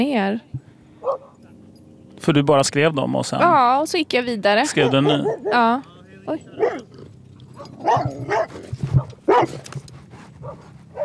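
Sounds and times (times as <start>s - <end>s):
speech: 0.0s - 1.2s, 2.2s - 6.9s, 7.6s - 9.8s
low rumble: 0.0s - 11.0s
dog barking: 1.0s - 1.4s, 4.6s - 5.8s, 6.4s - 6.9s, 7.5s - 9.8s, 10.4s - 11.0s.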